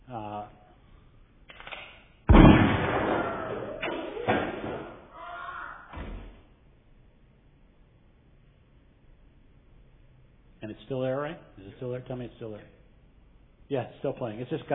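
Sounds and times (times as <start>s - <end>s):
gunshot sound effect: 2.3s - 5.1s
speech: 10.9s - 12.8s, 13.7s - 14.7s.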